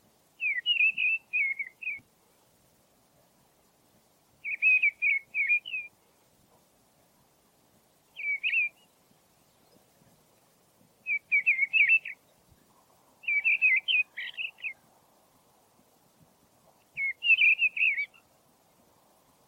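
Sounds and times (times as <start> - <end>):
mistle thrush singing whistled phrases: 0.4 - 2.1, 4.4 - 6.0, 8.1 - 10.0, 11.0 - 12.6, 13.2 - 14.8, 16.8 - 18.3.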